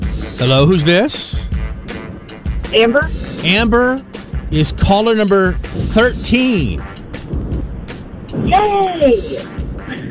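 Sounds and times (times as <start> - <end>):
car interior road rumble heard through a phone line: 0.0 - 10.0
speech: 0.4 - 1.5, 2.7 - 6.9, 8.5 - 9.6
high-pitched voice over a phone line: 2.7 - 3.1, 8.4 - 9.5.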